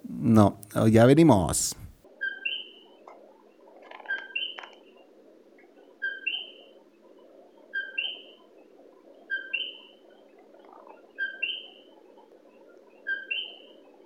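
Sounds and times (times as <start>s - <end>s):
speech: 0.2s - 1.8s
coquí tree frog calling: 2.2s - 14.0s.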